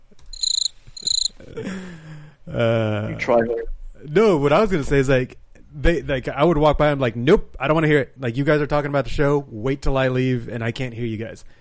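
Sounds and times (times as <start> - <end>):
crickets chirping played as a joke: 0.3 - 1.4
speech: 1.6 - 11.6.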